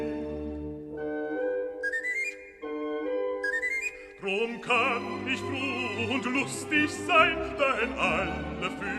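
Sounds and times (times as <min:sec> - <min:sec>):
sustained orchestral accompaniment: 0:00.0 - 0:08.9
bright breathy bird-catcher's pipe playing rising runs of notes: 0:01.8 - 0:02.8, 0:03.4 - 0:04.1
speech: 0:04.2 - 0:08.9.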